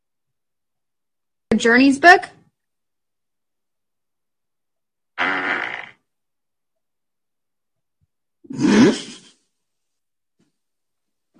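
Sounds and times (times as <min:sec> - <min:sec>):
speech: 0:01.6 - 0:02.4
fart: 0:05.2 - 0:06.1, 0:08.5 - 0:09.2.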